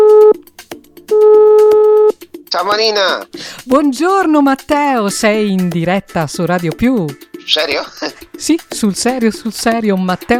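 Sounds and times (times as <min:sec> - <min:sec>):
telephone ringing tone while placing a call: 0:00.0 - 0:00.4, 0:01.1 - 0:02.2
speech: 0:02.6 - 0:10.3.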